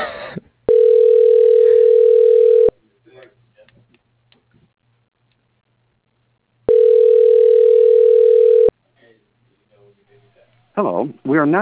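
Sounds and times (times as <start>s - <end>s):
faint noise: 0.0s - 11.5s
telephone ringback tone on an outgoing call: 0.7s - 2.8s, 6.7s - 8.7s
speech: 11.3s - 11.5s.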